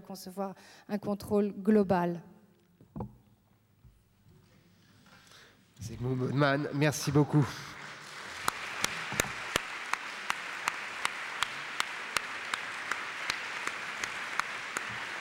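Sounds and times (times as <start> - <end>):
speech: 0.1 - 2.3, 5.8 - 7.8
sustained audience applause: 7.0 - 15.1
sharp individual claps: 8.0 - 15.1.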